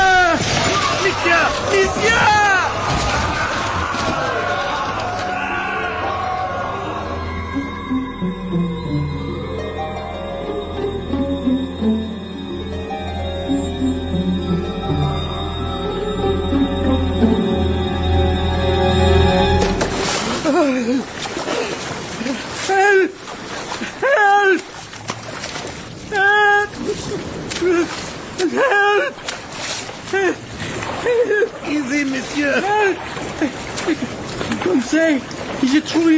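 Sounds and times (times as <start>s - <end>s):
person thrown into rough seawater splashing: 0.0s - 5.4s, 19.6s - 36.1s
voices crying out: 0.0s - 7.9s
low sustained musical drone: 5.9s - 20.6s.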